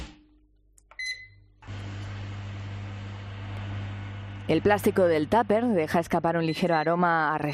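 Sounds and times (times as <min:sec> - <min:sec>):
brief beep: 0:01.0 - 0:01.4
microwave oven heating milk with low hum and fan whoosh: 0:01.0 - 0:06.2
speech: 0:04.5 - 0:07.5.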